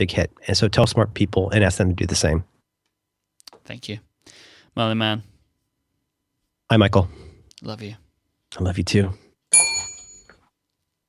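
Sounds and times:
speech: 0.0 - 2.5, 3.7 - 5.3, 6.7 - 9.6
bell strike: 9.5 - 10.3.

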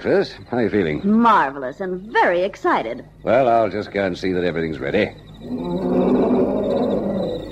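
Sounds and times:
speech: 0.0 - 6.0
lion roaring: 5.4 - 7.5.

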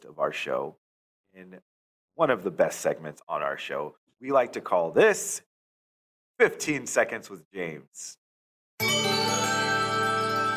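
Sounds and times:
speech: 0.1 - 0.8, 1.4 - 5.5, 6.4 - 8.2
bright little chime: 8.8 - 10.5.

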